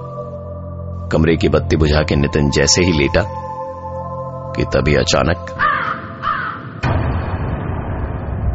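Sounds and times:
speech: 0:01.1 - 0:03.4, 0:04.6 - 0:05.6
crow cawing: 0:05.6 - 0:06.8
dense low rumbling wash of noise: 0:06.6 - 0:08.5.

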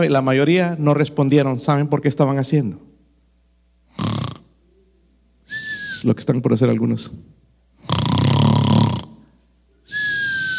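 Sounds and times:
speech: 0:00.0 - 0:02.9, 0:06.0 - 0:07.4
voice imitating snoring: 0:03.9 - 0:04.5, 0:07.8 - 0:09.2.

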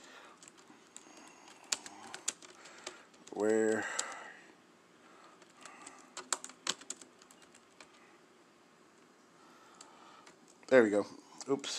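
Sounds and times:
typing on a computer keyboard: 0:00.4 - 0:04.3, 0:05.4 - 0:08.1
speech: 0:03.4 - 0:04.0, 0:10.7 - 0:11.7.

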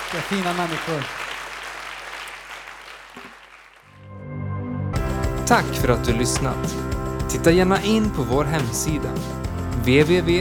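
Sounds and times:
crowd applauding: 0:00.0 - 0:03.9, 0:05.0 - 0:10.3
speech: 0:00.1 - 0:01.2, 0:05.5 - 0:10.3
music: 0:03.9 - 0:10.3.

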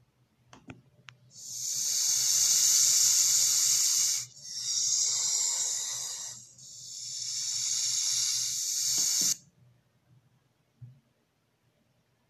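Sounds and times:
snake-like hissing sound effect: 0:01.3 - 0:09.4.

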